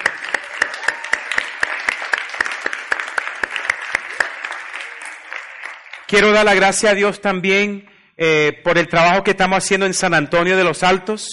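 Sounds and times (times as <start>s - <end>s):
audience applauding: 0.0s - 6.8s
speech: 6.1s - 11.3s.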